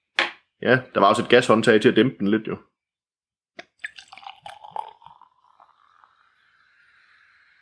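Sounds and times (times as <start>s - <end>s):
speech: 0.6s - 2.7s
beer pouring into a glass: 3.6s - 7.5s.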